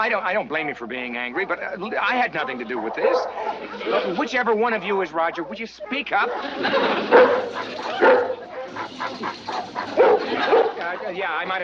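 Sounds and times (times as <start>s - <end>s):
speech: 0.0s - 8.3s, 10.4s - 11.6s
other dogs yipping and barking: 0.5s - 4.2s, 4.9s - 11.2s
laughter: 1.0s - 11.6s
Great Dane barking: 2.2s - 4.0s, 6.2s - 11.0s.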